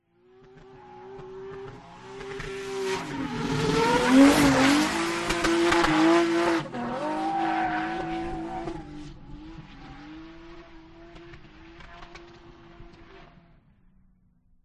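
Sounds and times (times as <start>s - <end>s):
drift car tires screeching: 0.5s - 10.3s
drift car approaching fast and passing: 0.5s - 13.4s.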